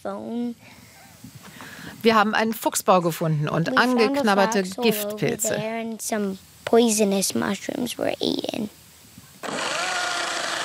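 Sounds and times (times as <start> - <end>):
speech: 0.0 - 8.8
chainsaw running at high revs on a plot of land: 9.4 - 10.6.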